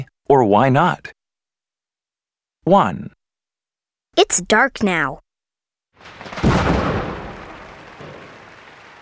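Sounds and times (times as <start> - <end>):
speech: 0.3 - 1.2, 2.6 - 3.2, 4.2 - 5.2
pink firework bursting with a deep boom: 6.0 - 8.9.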